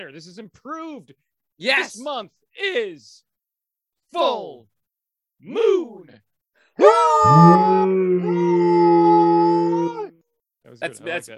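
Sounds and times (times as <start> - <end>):
speech: 0.0 - 3.3, 4.1 - 4.7, 5.4 - 8.9, 10.7 - 11.3
person imitating a wolf or werewolf howl: 6.8 - 10.2.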